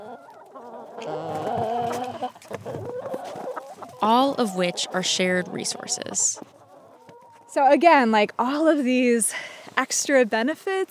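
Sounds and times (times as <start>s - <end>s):
chickens clucking on a shared community property: 0.0s - 8.3s
outdoor noise: 0.0s - 10.9s
speech: 4.0s - 6.6s, 7.6s - 10.9s.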